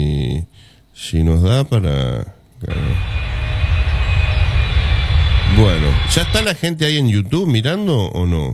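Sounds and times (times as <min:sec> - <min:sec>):
speech: 0:01.0 - 0:03.2, 0:05.5 - 0:08.5
airplane engine roar during takeoff: 0:02.7 - 0:06.5.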